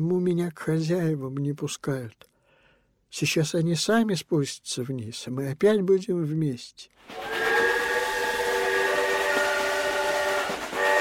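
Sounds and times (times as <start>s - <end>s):
speech: 0.0s - 2.3s, 3.1s - 7.6s
train horn as a train pulls away from a station platform: 7.1s - 10.9s.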